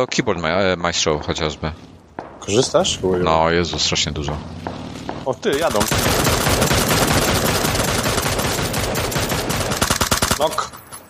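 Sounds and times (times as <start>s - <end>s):
speech: 0.0s - 6.8s, 10.4s - 10.8s
rapid automatic gunfire from a video game: 4.4s - 11.0s.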